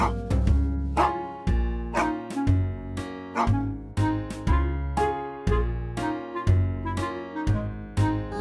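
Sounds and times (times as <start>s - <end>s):
dog barking in quick regular yaps: 0.0s - 0.2s, 1.0s - 1.3s, 1.9s - 2.5s, 3.3s - 3.6s
bouncy musical backing with steady bass and percussion: 0.0s - 8.3s.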